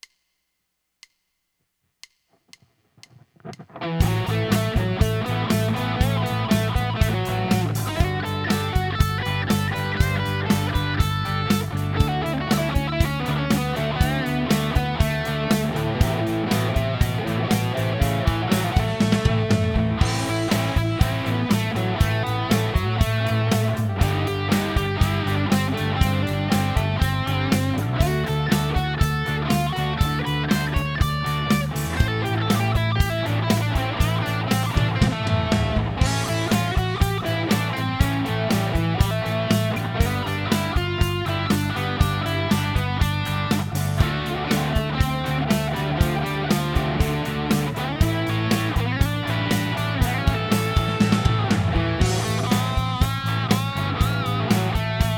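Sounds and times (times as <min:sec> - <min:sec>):
rock solo: 0:03.1 - 0:55.1.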